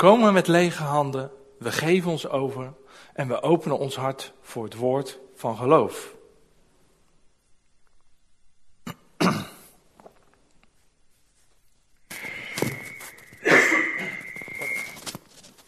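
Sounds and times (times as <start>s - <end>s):
speech: 0.0s - 6.2s
person coughing with a raspy wheezy edge: 8.8s - 9.8s, 13.4s - 14.3s
throat clearing: 8.8s - 9.8s, 13.4s - 14.3s.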